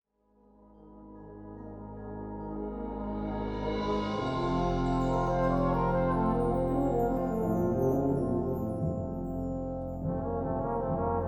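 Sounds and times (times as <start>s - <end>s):
concertino for euphonium: 2.3s - 11.1s.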